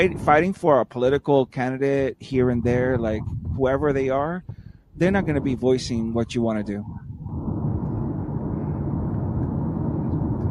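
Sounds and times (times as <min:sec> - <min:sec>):
speech: 0:00.0 - 0:07.1
jet engine noise at JFK airport in New York: 0:06.8 - 0:10.4.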